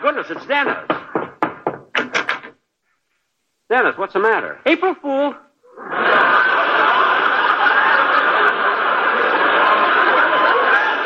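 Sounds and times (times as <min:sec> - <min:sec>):
speech: 0:00.0 - 0:01.0, 0:03.7 - 0:06.0
knocking on a door: 0:00.4 - 0:02.5
laughter: 0:05.7 - 0:11.0.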